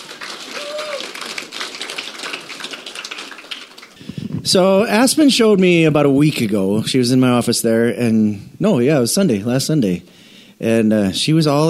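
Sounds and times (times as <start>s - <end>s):
crowd applauding: 0.0s - 4.0s
speech: 4.4s - 11.6s.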